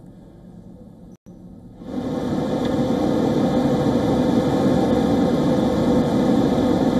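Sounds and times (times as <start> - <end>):
Russian fighter jet engines roaring in flight over the Black Sea: 1.6 - 6.9.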